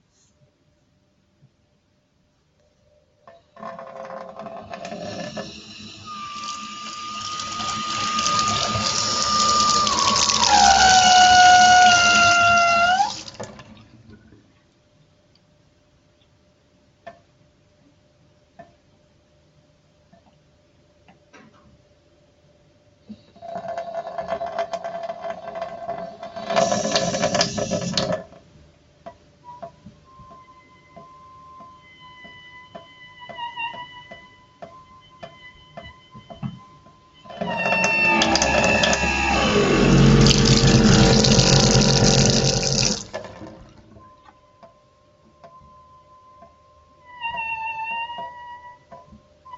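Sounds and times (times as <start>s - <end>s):
water tap running: 4.9s - 13.6s, 26.5s - 28.2s, 37.5s - 43.6s.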